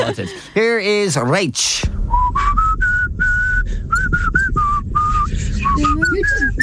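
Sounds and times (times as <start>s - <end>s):
speech: 0.1s - 2.6s
low hum: 1.6s - 6.6s
person whistling a tune: 2.1s - 6.6s.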